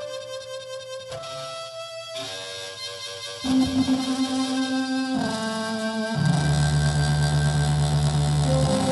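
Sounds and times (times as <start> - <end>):
speaker driver sound: 3.5 - 8.9.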